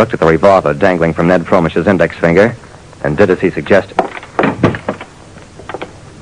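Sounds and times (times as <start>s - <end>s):
speech: 0.0s - 4.0s
apartment door swinging shut with a solid thump: 4.0s - 5.1s.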